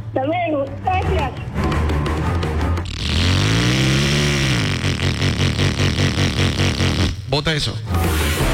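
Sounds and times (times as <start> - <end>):
speech: 0.2 - 1.5, 7.3 - 8.4
Suzuki motorcycle engine revving and idling: 1.9 - 7.3.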